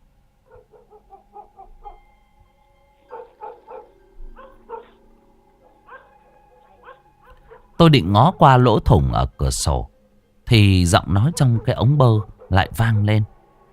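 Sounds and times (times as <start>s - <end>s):
dog next door barking: 0.5s - 2.1s, 3.1s - 5.0s, 5.6s - 7.8s, 11.2s - 13.3s
speech: 7.8s - 9.9s, 10.5s - 13.3s.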